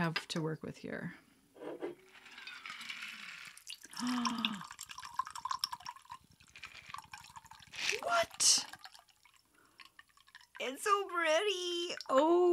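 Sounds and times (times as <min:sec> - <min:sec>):
speech: 0:00.0 - 0:01.3, 0:04.0 - 0:04.7, 0:11.2 - 0:12.5
straight alcohol with lobster dust pouring into a container: 0:02.4 - 0:12.1
trickling drips: 0:03.4 - 0:12.5.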